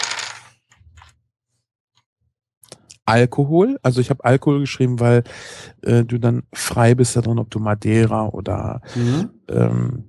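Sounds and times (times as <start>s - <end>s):
dice rattling and clattering onto a hard surface: 0.0s - 0.6s
speech: 3.1s - 10.0s.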